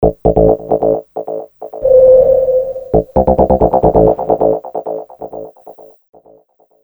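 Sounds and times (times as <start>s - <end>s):
hypnotic jingle: 1.8s - 4.4s.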